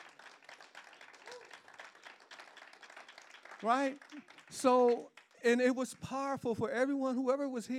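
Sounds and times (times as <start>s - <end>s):
crowd applauding: 0.0s - 6.2s
vocal whoop or cheer: 1.2s - 1.6s
speech: 3.6s - 7.7s.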